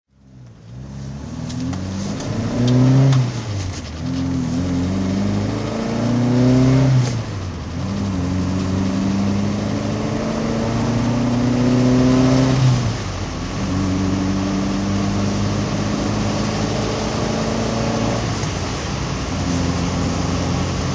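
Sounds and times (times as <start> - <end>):
Alfa Romeo GT1600 Junior driving: 0.1 - 20.9.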